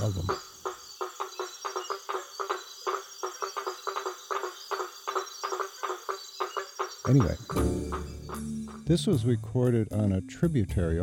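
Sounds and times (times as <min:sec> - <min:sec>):
faint high hiss of insects: 0:00.0 - 0:07.7
dense frog chorus among water lilies: 0:00.0 - 0:09.2
speech: 0:00.1 - 0:00.5, 0:07.1 - 0:11.0.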